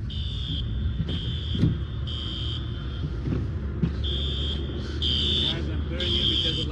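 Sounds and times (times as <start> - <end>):
heavy rumble of tornado wind and storm: 0.0 - 4.8
car alarms triggered by tornado in a suburb of Los Angeles California: 0.0 - 6.6.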